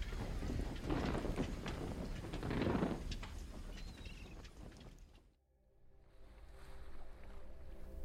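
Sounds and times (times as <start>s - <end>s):
open water washing and lapping around boats: 0.0s - 5.2s, 6.0s - 8.0s.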